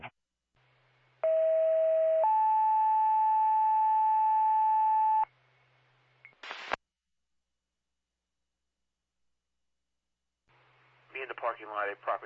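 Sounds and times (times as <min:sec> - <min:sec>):
electronic telephone call ringing tone: 0:01.2 - 0:05.2.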